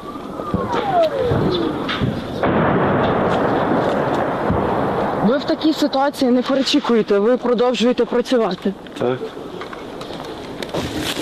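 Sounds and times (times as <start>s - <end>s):
falling whistle: 0.0s - 1.9s
Grad multiple rocket launcher firing a sustained volley: 0.4s - 7.0s
speech: 0.6s - 2.2s, 5.3s - 9.5s.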